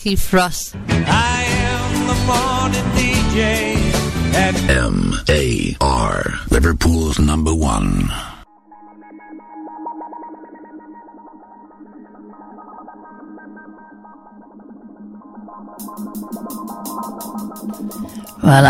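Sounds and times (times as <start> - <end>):
heavily processed effects-laden radio jingle: 0.0 - 1.4, 3.3 - 8.4, 15.8 - 18.6
speech: 0.0 - 1.4, 2.1 - 8.3, 15.6 - 18.6.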